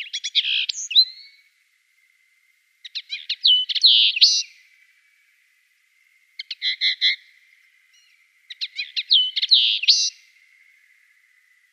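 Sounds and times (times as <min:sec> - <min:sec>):
Eurasian linnet song: 0:00.0 - 0:01.4, 0:02.8 - 0:04.6, 0:06.4 - 0:07.3, 0:07.9 - 0:10.4.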